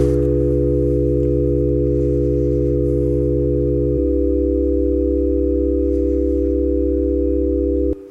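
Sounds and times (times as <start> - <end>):
chord of pure electronic sine wave tones: 0.0 - 8.0.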